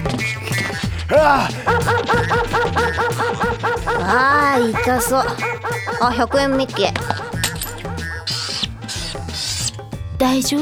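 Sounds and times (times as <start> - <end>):
laughter: 0.0 - 9.4
speech: 1.2 - 7.2, 10.2 - 10.6
agitated dog barking and yelping after biting a person: 1.6 - 9.0.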